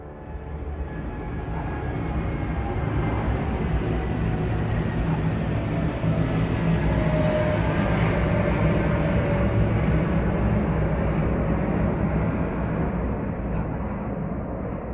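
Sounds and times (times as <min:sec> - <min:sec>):
airplane flying overhead: 0:00.0 - 0:14.9.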